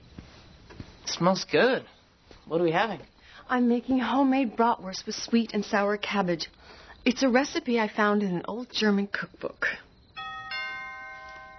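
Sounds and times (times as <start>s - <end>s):
speech: 1.2s - 9.8s
doorbell two-tone chime: 10.2s - 11.5s.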